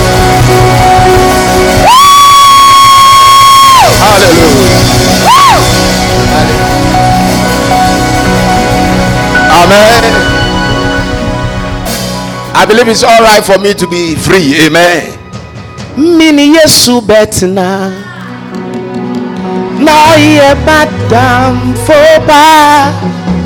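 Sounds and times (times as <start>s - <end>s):
loud crowd roaring and cheering: 0.1s - 12.7s, 18.1s - 19.9s
brief whooping cry: 1.8s - 4.0s, 5.1s - 5.9s
long sustained shout: 1.8s - 5.9s
speech: 12.6s - 15.1s, 16.0s - 18.1s, 19.9s - 23.3s.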